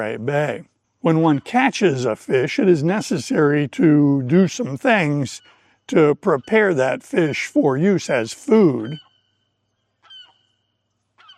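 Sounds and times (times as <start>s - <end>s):
speech: 0.0s - 9.1s
seagull calling: 0.0s - 10.6s, 11.2s - 11.3s.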